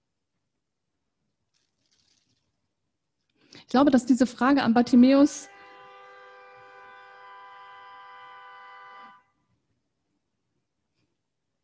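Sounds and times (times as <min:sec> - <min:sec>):
speech: 0:03.7 - 0:05.5
car horn blast on the grounds: 0:05.4 - 0:09.4.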